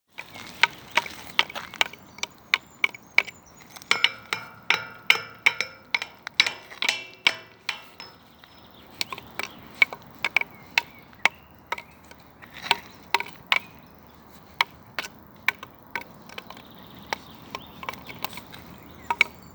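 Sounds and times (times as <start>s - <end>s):
children's wooden percussion: 0.1s - 19.5s
metal grille struck: 0.6s - 10.4s.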